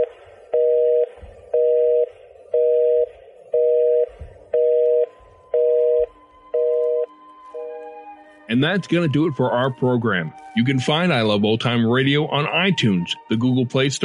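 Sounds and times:
telephone busy signal beeps: 0.0 - 7.7
speech: 8.6 - 14.0.

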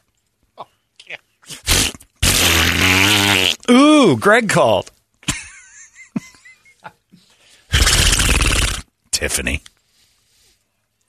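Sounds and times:
person blowing fart-like raspberries: 1.4 - 3.8, 7.6 - 8.9
speech: 3.7 - 4.9, 9.2 - 9.7.

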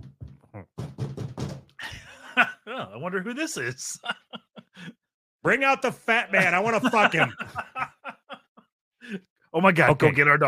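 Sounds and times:
voice imitating knocking on a door: 0.0 - 1.8
laughter: 1.8 - 3.0, 3.6 - 4.9, 6.1 - 8.6
speech: 2.4 - 4.2, 5.4 - 7.6, 9.1 - 10.4
breathy vocal sound: 4.7 - 5.0.

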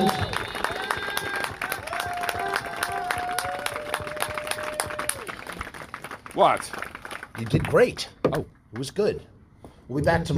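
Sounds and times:
cheering: 0.0 - 5.7
crowd applauding: 0.0 - 7.9
speech: 6.4 - 9.3, 9.9 - 10.3.

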